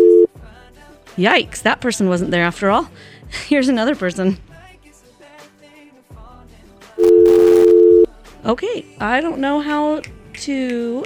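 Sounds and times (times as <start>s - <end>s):
telephone line noise: 0.0s - 0.3s, 7.0s - 8.1s
speech: 1.2s - 4.5s, 8.4s - 11.0s
telephone dial tone on a call-in line: 7.0s - 8.1s.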